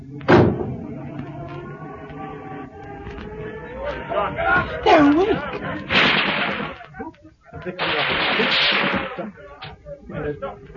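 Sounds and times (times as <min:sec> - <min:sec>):
car door slamming shut with a heavy thud: 0:00.2 - 0:00.8
speech: 0:04.0 - 0:06.2, 0:07.6 - 0:09.5, 0:10.1 - 0:10.7.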